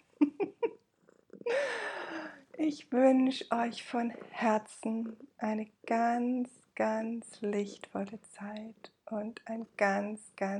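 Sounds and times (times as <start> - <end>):
pet cat purring: 0.0 - 10.5
speech: 2.6 - 10.5.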